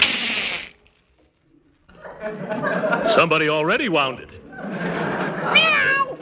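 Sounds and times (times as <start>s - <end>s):
laughter: 1.9s - 6.1s
speech: 2.2s - 6.1s
cat yowling after its tail is stepped on: 5.5s - 6.1s.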